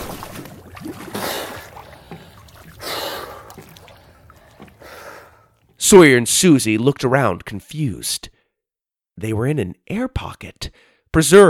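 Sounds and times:
water splashing: 0.0s - 5.8s
breathy gasps: 1.1s - 5.6s, 10.7s - 11.1s
speech: 5.9s - 8.4s, 9.2s - 11.4s.

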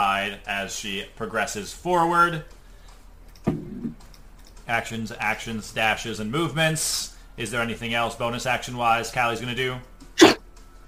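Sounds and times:
speech: 0.2s - 2.6s, 4.7s - 10.4s
sneeze: 10.2s - 10.4s.

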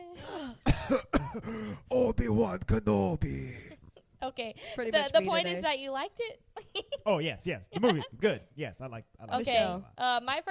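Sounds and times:
person doing a mock coughing fit with harsh raspy coughs: 0.6s - 1.9s
speech: 0.9s - 10.5s.

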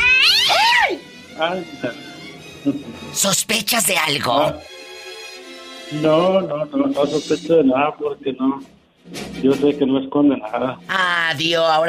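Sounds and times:
cat meowing: 0.0s - 1.0s
speech: 1.4s - 4.7s, 5.9s - 11.8s.

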